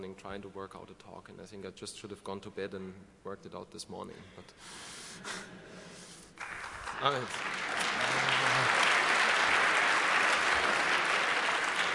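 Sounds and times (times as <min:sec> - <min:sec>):
speech: 0:00.0 - 0:05.8, 0:07.0 - 0:07.7
audience applause: 0:06.4 - 0:11.9.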